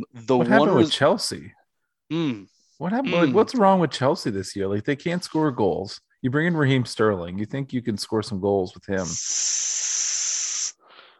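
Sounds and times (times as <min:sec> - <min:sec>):
speech: 0:00.0 - 0:10.2
snake hissing: 0:09.0 - 0:11.0.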